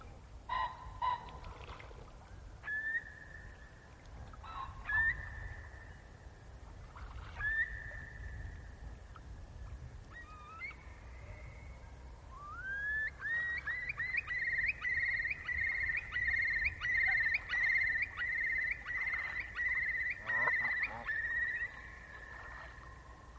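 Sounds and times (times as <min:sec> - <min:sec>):
faint low rumble of open-air background: 0:00.0 - 0:23.3
curlew calling: 0:00.5 - 0:06.2, 0:06.9 - 0:09.3, 0:10.0 - 0:23.3.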